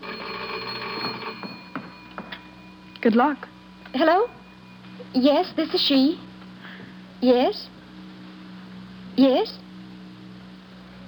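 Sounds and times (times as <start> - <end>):
telephone ringing: 0.0 - 6.5
faint knocks: 0.8 - 2.6
speech: 3.0 - 4.4, 5.1 - 6.2, 7.2 - 7.7, 9.2 - 9.6.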